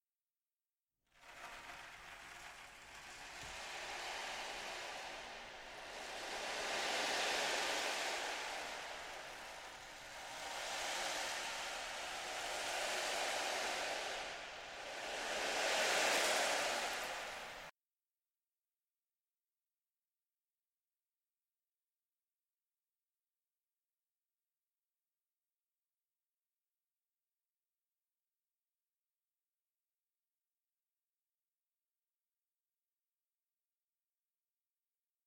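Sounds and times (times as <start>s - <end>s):
ocean drum: 1.2s - 17.7s.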